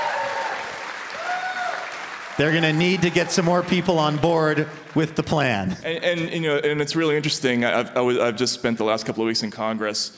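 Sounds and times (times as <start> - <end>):
audience applause: 0.0 - 5.8
speech: 2.4 - 10.1.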